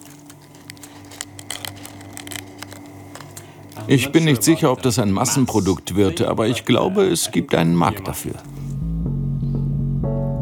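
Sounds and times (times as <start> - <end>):
crispy jellyfish chips crunching: 0.0 - 6.8
steady low hum: 0.0 - 9.4
speech: 3.9 - 8.6.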